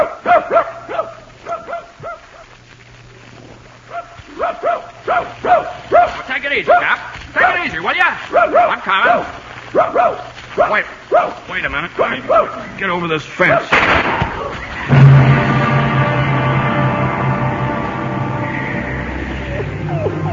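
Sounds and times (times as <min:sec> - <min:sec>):
dog barking excitedly: 0:00.0 - 0:02.5, 0:03.9 - 0:12.8, 0:13.4 - 0:13.8
faint low hum: 0:00.0 - 0:20.3
speech: 0:06.6 - 0:06.9, 0:11.6 - 0:14.1.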